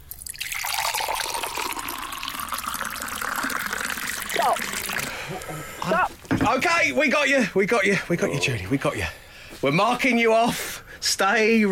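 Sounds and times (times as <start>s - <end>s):
water pouring into a jar: 0.0s - 5.3s
speech: 5.4s - 11.7s.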